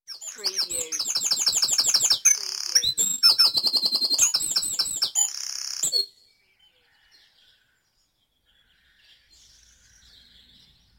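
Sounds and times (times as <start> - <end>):
bird trilling in a dawn chorus: 0.1 - 6.2
birds chirping in a dawn chorus in Mold North Wales: 0.1 - 10.9.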